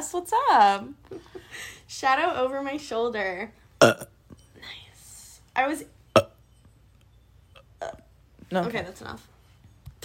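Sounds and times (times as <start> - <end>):
quiet low hum: 0.0 - 10.0
speech: 0.1 - 4.8, 5.6 - 6.3, 7.8 - 9.3
person burping: 3.8 - 4.1, 6.2 - 6.4, 7.6 - 8.1.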